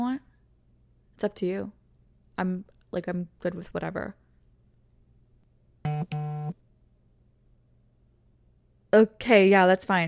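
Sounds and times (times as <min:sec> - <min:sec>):
speech: 0:01.2 - 0:01.8, 0:02.4 - 0:04.2, 0:08.9 - 0:10.0
phone buzzy tone: 0:05.9 - 0:06.6.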